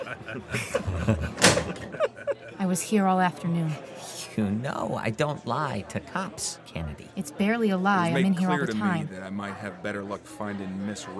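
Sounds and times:
laughter: 0.0 - 2.9
speech: 0.1 - 1.4, 2.7 - 11.1
door thudding shut: 1.3 - 1.9.

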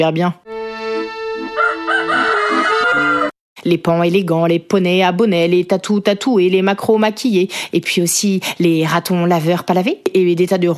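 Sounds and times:
speech: 0.0 - 0.5, 2.9 - 10.7
rooster crowing: 1.5 - 3.4.

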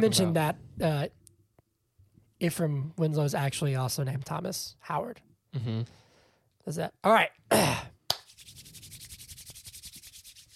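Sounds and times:
speech: 0.0 - 1.2, 2.4 - 6.0, 6.6 - 7.9
hands rubbing together: 8.1 - 10.5.

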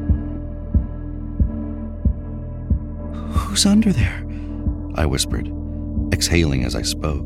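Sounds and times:
fast heartbeat thumping: 0.1 - 3.5
speech: 3.5 - 4.2, 5.0 - 7.2.

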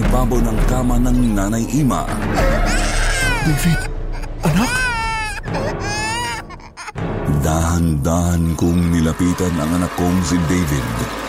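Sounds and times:
speech: 0.2 - 4.9, 7.8 - 11.2
infant wailing: 2.2 - 7.0.

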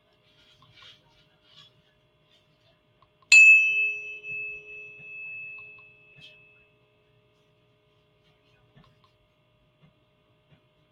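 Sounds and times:
soft low hum: 0.0 - 10.9
struck 432-hertz healing tone ringing: 3.3 - 7.0.

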